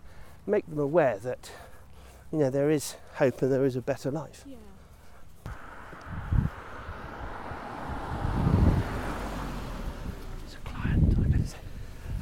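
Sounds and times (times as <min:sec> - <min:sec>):
speech: 0:00.5 - 0:01.6, 0:02.3 - 0:04.7
car driving along a road near Goodwood Race Course: 0:04.9 - 0:12.2
gusty wind on the microphone: 0:05.4 - 0:12.2.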